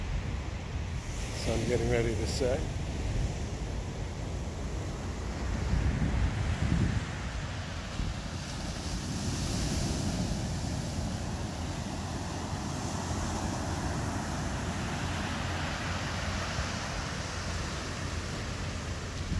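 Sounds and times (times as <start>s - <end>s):
heavy ocean surf crashing on a beach: 0.0s - 19.3s
wind buffeting the microphone: 0.0s - 19.3s
speech: 1.5s - 2.8s.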